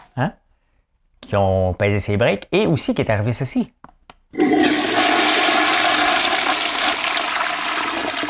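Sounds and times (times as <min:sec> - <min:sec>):
speech: 0:00.2 - 0:00.4, 0:01.2 - 0:04.5
toilet flushing with rush of swirling water: 0:04.4 - 0:08.2.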